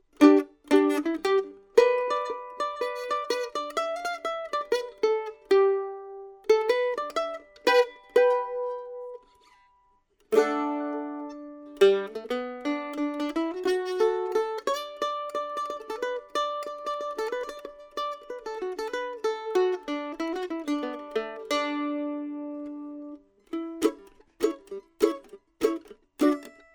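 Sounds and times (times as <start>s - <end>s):
mandolin recorded with KSM32 microphone: 0.0s - 26.7s.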